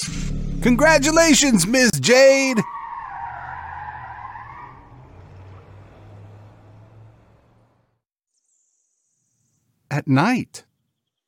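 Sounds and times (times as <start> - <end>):
car tires squealing as it peels out: 0.0 - 7.9
car engine low roar as it speeds off: 0.0 - 8.0
speech: 0.6 - 2.8, 10.0 - 10.7.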